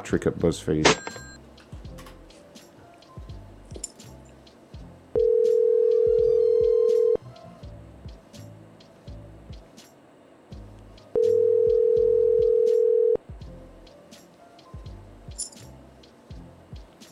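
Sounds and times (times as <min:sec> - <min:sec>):
speech: 0:00.0 - 0:01.2
ringback tone of an outgoing telephone call: 0:01.0 - 0:01.4, 0:05.2 - 0:07.2, 0:11.2 - 0:13.2.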